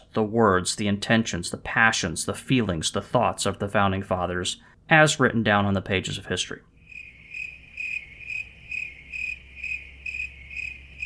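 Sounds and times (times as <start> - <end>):
speech: 0.2 - 6.7
crickets chirping: 6.8 - 11.0.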